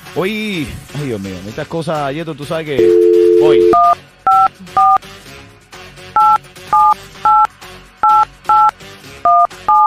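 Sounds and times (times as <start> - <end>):
speech: 0.2 - 5.1
touch-tone dual-tone beeps dialing a phone number: 2.8 - 5.0, 6.2 - 8.7, 9.3 - 9.8.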